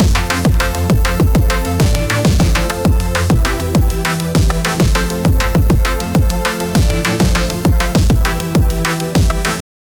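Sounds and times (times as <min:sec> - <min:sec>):
dhol drum playing dance rhythm: 0:00.0 - 0:09.6.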